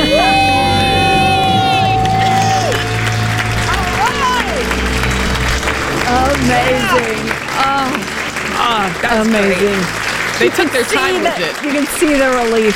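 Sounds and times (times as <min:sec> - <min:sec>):
several people screaming in celebration after paying off their debt: 0:00.0 - 0:08.4
crowd applauding: 0:00.0 - 0:12.7
speech: 0:09.1 - 0:12.7.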